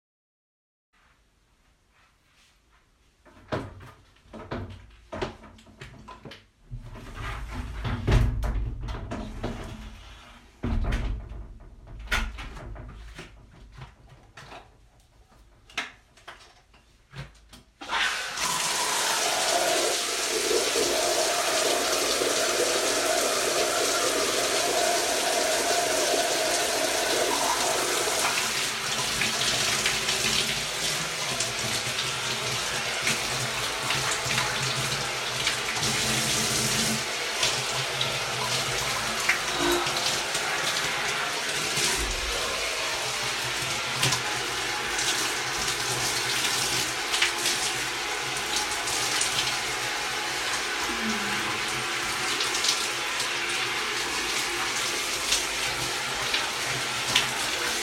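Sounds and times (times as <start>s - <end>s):
morning shower running: 6.8s - 13.4s, 17.8s - 57.8s
person moaning in the shower: 39.5s - 40.2s, 50.8s - 51.8s.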